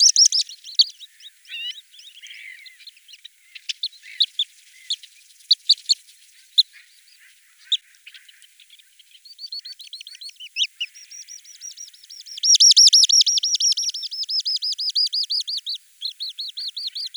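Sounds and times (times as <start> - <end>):
bird singing repeated looping whistled notes: 0.0 - 17.1.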